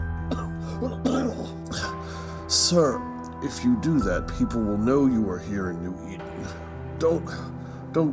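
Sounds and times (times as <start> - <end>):
harsh throaty coughs: 0.3 - 2.0
speech: 0.8 - 8.1.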